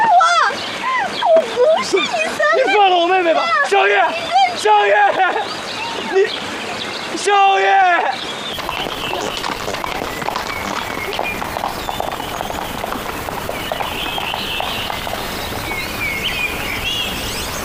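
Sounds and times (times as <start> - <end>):
dense noisy background: 0.0 - 17.6
hooves of a horse pulling a carriage clip-clopping: 8.6 - 17.6.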